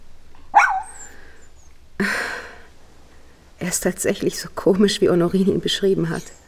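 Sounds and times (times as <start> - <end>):
small light-brown dog barking: 0.5 - 1.1
speech: 3.7 - 6.4.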